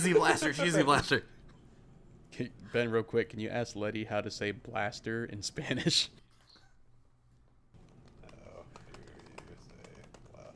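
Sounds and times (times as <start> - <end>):
speech: 0.0 - 1.3, 2.4 - 6.2
typing on a computer keyboard: 7.8 - 10.5.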